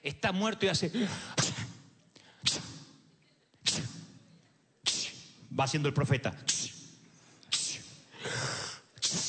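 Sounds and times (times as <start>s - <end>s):
speech: 0.0s - 1.5s, 5.6s - 6.5s
voice imitating a boy sneezing in a retold Bible story: 1.2s - 3.0s, 3.6s - 4.2s, 4.8s - 5.4s, 6.4s - 9.2s.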